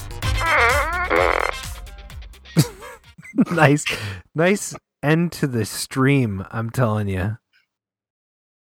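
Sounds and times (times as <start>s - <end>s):
toy fart blaster gun firing electronic fart noises: 0.3s - 1.7s
laughter: 2.6s - 4.2s
speech: 3.5s - 7.4s.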